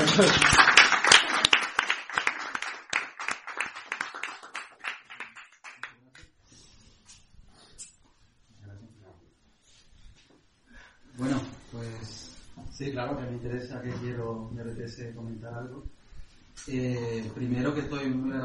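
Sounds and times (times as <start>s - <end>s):
audience applause for a short story prize winner: 0.0s - 6.0s
speech: 0.2s - 0.6s, 13.0s - 16.0s, 16.6s - 18.4s.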